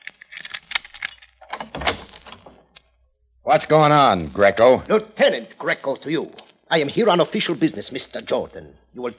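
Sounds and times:
front door lock clicking and rattling: 0.0 - 2.8
speech: 3.5 - 9.1.

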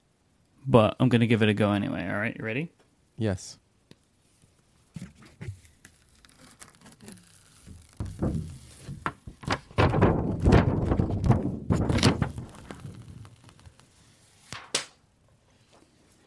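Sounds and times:
speech: 0.6 - 3.6
screen protector peeled off a tablet: 5.0 - 9.8, 10.4 - 14.6.

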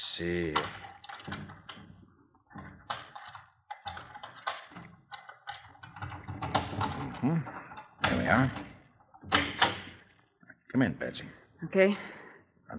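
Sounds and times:
speech: 0.0 - 1.6, 10.8 - 12.7
metallic clicking and rattling of a door lock being picked: 0.6 - 10.0.

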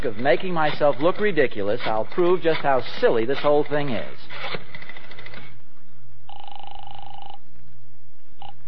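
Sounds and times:
speech: 0.0 - 4.7
low hum: 0.0 - 8.6
steady electronic telephone ring: 6.3 - 7.4.

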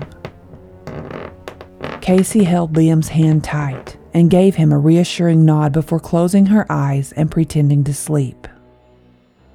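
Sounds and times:
wooden hallway floorboards creaking under an old woman's slow footsteps: 0.0 - 4.1
speech: 2.1 - 8.5.

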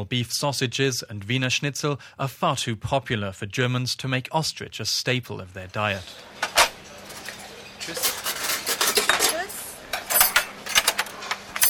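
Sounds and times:
speech: 0.0 - 6.5, 7.9 - 8.2
dishes and cutlery clinking in a busy company cafeteria in Cologne: 6.0 - 11.6.

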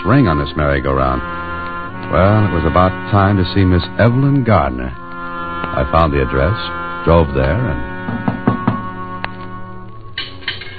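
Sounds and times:
speech: 0.0 - 5.0, 5.8 - 7.9
sustained music: 0.0 - 10.7
knocking on the front door of a house: 8.1 - 8.9.

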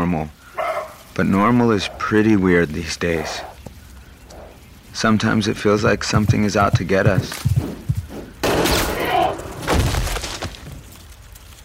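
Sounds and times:
speech: 0.1 - 0.4, 1.2 - 3.5, 5.0 - 7.9
gunshot fired at an animal: 8.4 - 10.4.

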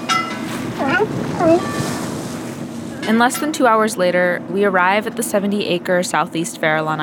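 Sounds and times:
boat moving through ocean waves: 0.6 - 2.9
wind rushing: 0.6 - 2.9
speech: 0.8 - 2.0, 3.1 - 7.0.

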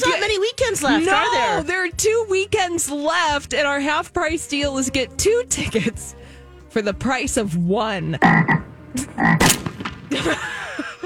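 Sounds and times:
laughter: 0.0 - 2.0, 5.3 - 6.2, 10.0 - 11.0
speech: 0.0 - 8.6, 9.2 - 10.5
frogs croaking with raspy calls: 8.2 - 10.1.

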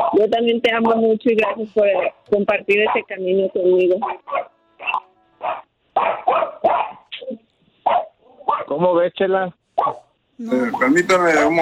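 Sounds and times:
dog barking: 0.0 - 0.3, 2.8 - 3.2, 4.0 - 7.1, 7.8 - 8.8, 9.8 - 10.2
speech: 0.1 - 4.2, 8.7 - 11.6.

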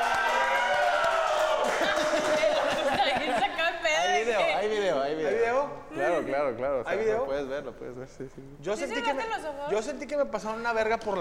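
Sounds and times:
crowd shouting and cheering: 0.0 - 3.2
laughter: 1.6 - 4.5
speech: 4.3 - 11.2.

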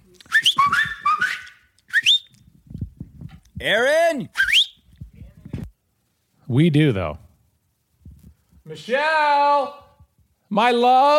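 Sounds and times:
person whistling a melodic call: 0.3 - 2.4, 4.4 - 4.8
speech: 3.6 - 4.4, 6.5 - 7.2, 8.7 - 9.8, 10.5 - 11.1.

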